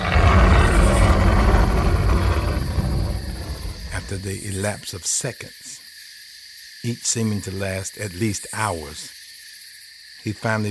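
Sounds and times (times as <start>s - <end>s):
large adult male lion roaring: 0.0s - 4.4s
speech: 4.2s - 5.7s, 6.8s - 9.2s, 10.2s - 10.6s.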